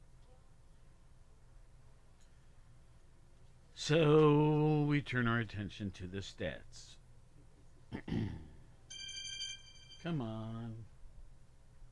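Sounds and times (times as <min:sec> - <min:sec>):
speech: 0:03.9 - 0:07.0, 0:10.0 - 0:10.9
mobile phone ringing with a bright electronic tone: 0:08.9 - 0:10.8.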